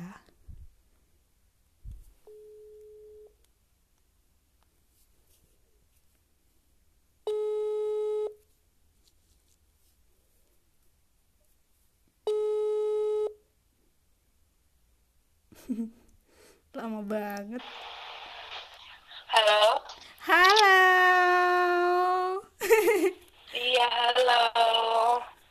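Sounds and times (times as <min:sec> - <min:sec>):
faint noise: 0:00.0 - 0:25.4
phone ringback tone on an outgoing call: 0:02.3 - 0:03.3, 0:07.3 - 0:08.4, 0:12.3 - 0:13.4
speech: 0:15.6 - 0:16.1, 0:16.7 - 0:17.9
laughter: 0:22.6 - 0:23.2.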